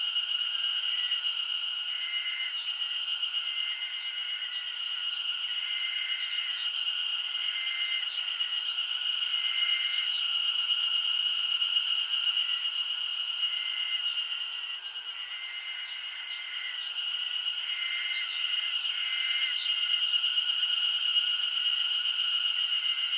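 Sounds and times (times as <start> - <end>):
insect chorus with steady high-pitched ringing in summer in Japan: 0.0 - 23.1.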